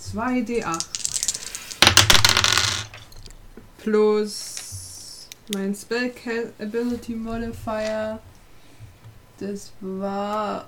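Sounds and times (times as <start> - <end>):
speech: 0.1 - 1.0, 3.8 - 4.5, 5.5 - 8.3, 9.4 - 10.6
dice rattling across a hard surface: 0.6 - 3.4.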